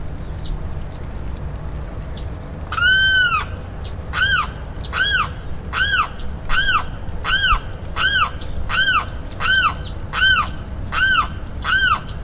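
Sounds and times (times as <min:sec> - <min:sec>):
limpkin Aramus guarauna wailing calls: 0:02.7 - 0:12.2.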